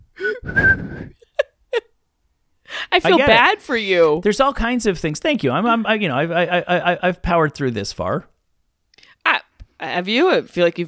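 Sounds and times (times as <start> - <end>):
breathy airy attempt at mouth whistling: 0.2 - 1.2
speech: 3.0 - 8.3, 10.0 - 10.8.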